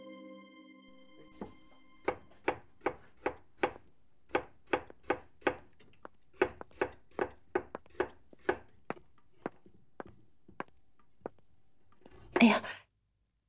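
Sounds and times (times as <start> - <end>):
knife chopping vegetables on a cutting board: 1.4 - 10.6
speech: 12.4 - 12.8.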